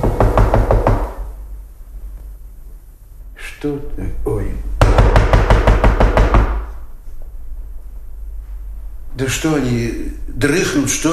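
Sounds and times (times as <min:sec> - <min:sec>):
firm knocking on a wooden door by a visitor: 0:00.0 - 0:01.3, 0:04.8 - 0:06.7
speech: 0:03.6 - 0:05.2, 0:09.2 - 0:11.1.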